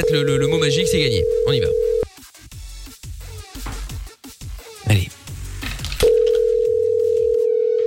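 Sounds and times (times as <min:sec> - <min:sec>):
speech: 0:00.0 - 0:01.9
call tone from an outgoing telephone call: 0:00.0 - 0:02.1, 0:06.0 - 0:07.8.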